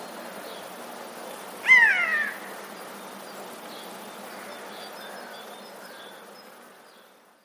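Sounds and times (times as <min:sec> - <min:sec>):
background hiss: 0:00.0 - 0:07.4
Eurasian jay making a nasal cat-like mew: 0:01.6 - 0:02.5.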